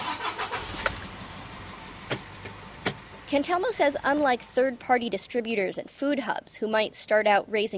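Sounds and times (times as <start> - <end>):
farm truck loaded with lettuce boxes starting in Stratham: 0.0 - 5.3
speech: 3.3 - 7.7.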